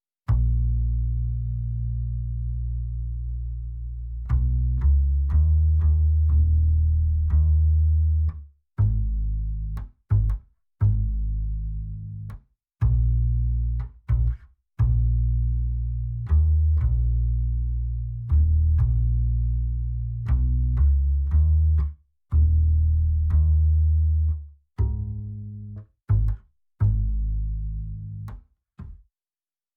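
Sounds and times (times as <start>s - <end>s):
acoustic bass: 0.3s - 29.0s.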